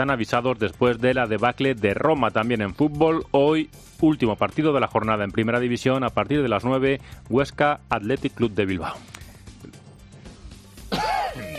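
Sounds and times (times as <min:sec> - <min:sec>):
speech: 0:00.0 - 0:09.2
person coughing from allergy: 0:10.9 - 0:11.5.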